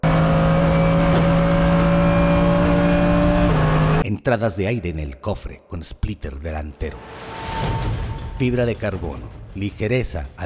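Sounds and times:
Mercedes SLS AMG GT3 race car engine at 280 km/h: 0.0s - 4.0s
speech: 4.2s - 10.4s.

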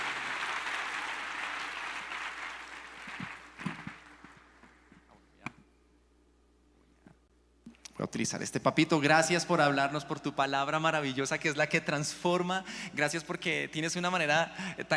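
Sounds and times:
congregational applause at a church service: 0.0s - 4.8s
speech: 8.1s - 14.9s.

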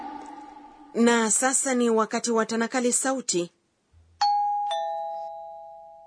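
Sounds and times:
speech: 1.0s - 3.6s
two-tone doorbell chime ringing at home: 4.2s - 6.0s.

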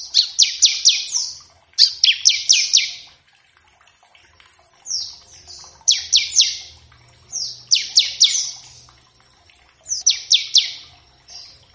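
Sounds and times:
bar-winged prinia singing runs of high falling whistled notes: 0.0s - 3.1s, 4.9s - 8.9s, 9.9s - 11.6s.

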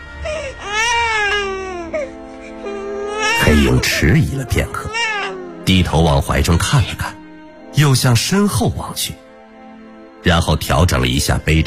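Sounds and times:
infant wailing in a forest: 0.1s - 5.6s
speech: 3.5s - 5.1s, 5.7s - 7.2s, 7.8s - 9.2s, 10.2s - 11.6s.

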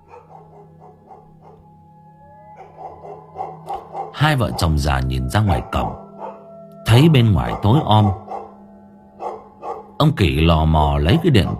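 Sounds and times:
several dogs in a yard barking at night: 0.0s - 1.7s, 2.5s - 6.5s, 7.3s - 10.0s, 11.1s - 11.5s
speech: 4.2s - 6.0s, 7.0s - 8.2s, 10.0s - 11.5s.

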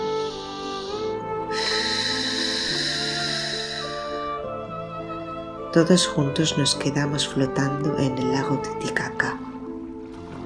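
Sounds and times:
deep breath taken in and let out during a guided meditation: 0.0s - 4.4s
loud sustained musical tones: 0.0s - 6.5s
speech: 5.7s - 9.5s.

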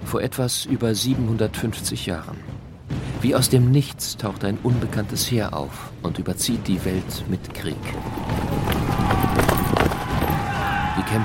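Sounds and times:
speech: 0.1s - 9.5s
shaggy horses of a medieval Mongol army galloping: 4.6s - 11.2s.

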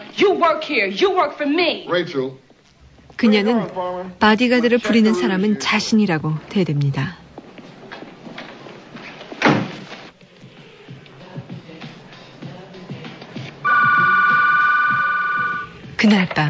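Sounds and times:
speech: 0.1s - 2.4s, 3.2s - 7.2s, 16.0s - 16.4s
telephone ringing in a woman's room at night in a film scene: 13.7s - 15.7s.

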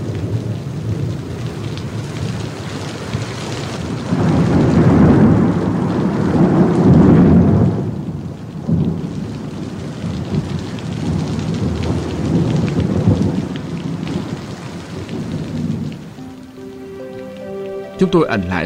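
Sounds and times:
heavy rain pouring at night: 0.0s - 18.6s
thunder rumbling at night: 3.8s - 16.2s
speech: 18.0s - 18.6s.

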